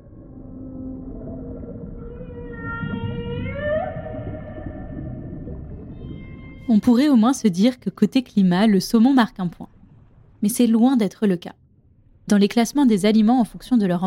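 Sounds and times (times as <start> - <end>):
whale song: 0.0 - 6.9
deep steady underwater rumble: 0.0 - 7.3, 8.6 - 10.8, 11.5 - 12.3
speech: 6.7 - 9.7, 10.4 - 11.6, 12.3 - 14.0.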